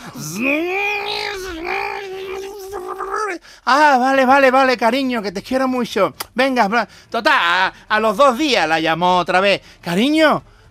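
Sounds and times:
voice imitating a running blender with a whirring hum: 0.0 - 3.4
speech: 0.2 - 1.9, 2.9 - 10.6.

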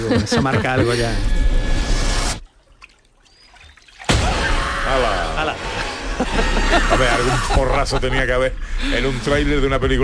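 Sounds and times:
laughter: 0.0 - 1.2, 5.0 - 9.5
speech: 0.0 - 1.4, 4.9 - 10.0
faint water drips: 2.4 - 4.1
water splashing and sloshing in a swimming pool: 2.4 - 4.6.

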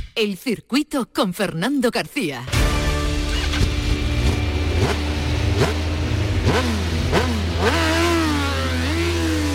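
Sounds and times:
speech: 0.2 - 2.6
motorcycle engines revving: 3.1 - 9.5.

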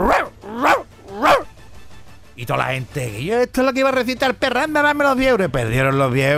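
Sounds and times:
person imitating a dog barking: 0.0 - 1.5
speech: 2.4 - 6.3.

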